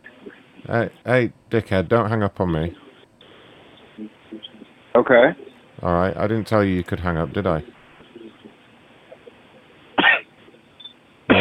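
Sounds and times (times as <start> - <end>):
speech: 0.7 - 2.8, 5.0 - 7.7
harsh coughing from a caller during a phone call: 10.0 - 10.2.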